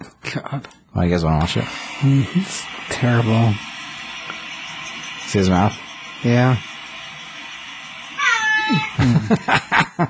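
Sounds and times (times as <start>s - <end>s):
speech: 0.3s - 3.7s, 5.3s - 6.7s, 8.7s - 10.0s
laughter: 2.0s - 10.0s
cat meowing in a video played through a small speaker: 8.2s - 9.0s.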